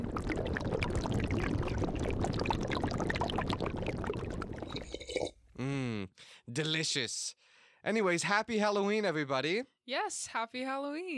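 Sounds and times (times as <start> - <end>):
hot drink poured into a cup: 0.0 - 5.4
speech: 6.6 - 11.1.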